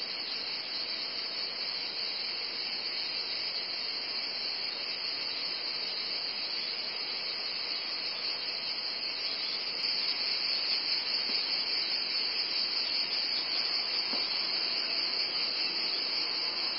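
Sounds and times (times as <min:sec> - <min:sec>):
shrill cicada drone: 0:00.0 - 0:16.7.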